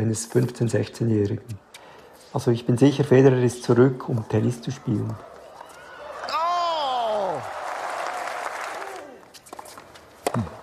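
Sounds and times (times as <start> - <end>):
speech: 0.0 - 1.6, 2.3 - 5.3
tennis crowd applauding during a match: 5.4 - 9.3
person whooping in a tennis crowd: 5.6 - 7.6, 8.6 - 9.3.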